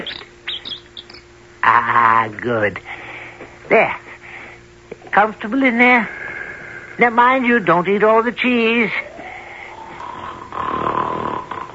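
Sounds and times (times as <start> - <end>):
speech: 1.6 - 2.9, 3.7 - 4.0, 5.2 - 6.2, 7.0 - 9.1
giant's loud deep snore while asleep in a mountaintop clearing: 9.7 - 11.7.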